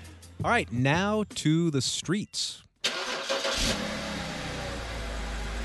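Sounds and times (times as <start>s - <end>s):
speech: 0.4s - 2.6s
car engine cranking, starting and idling: 2.8s - 5.6s.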